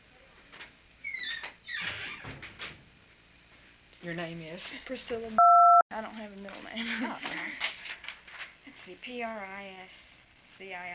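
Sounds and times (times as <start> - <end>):
door hinges squeaking as it is shut: 0.4 - 2.9
speech: 4.0 - 7.7, 8.8 - 10.9.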